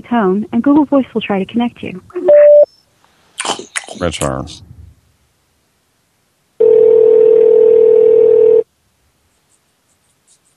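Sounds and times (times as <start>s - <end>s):
speech: 0.0s - 2.2s, 4.0s - 4.7s
telephone ring tone on a call: 6.6s - 8.6s.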